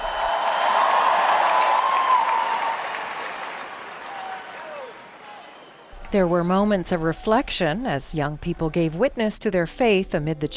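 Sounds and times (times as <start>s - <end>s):
large crowd cheering: 0.0s - 6.1s
speech: 6.1s - 10.5s.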